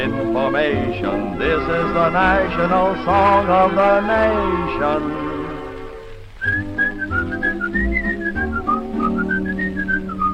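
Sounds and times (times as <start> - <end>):
speech: 0.0 - 5.3
steady instrumental backing music: 0.0 - 10.3
person whistling a lilting melody: 6.4 - 10.3.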